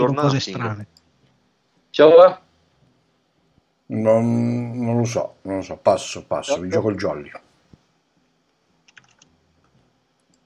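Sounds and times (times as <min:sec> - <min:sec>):
speech: 0:00.0 - 0:01.0, 0:02.0 - 0:02.4, 0:03.9 - 0:07.4
low quiet hum: 0:00.0 - 0:10.4
person typing on a computer keyboard: 0:08.8 - 0:09.3.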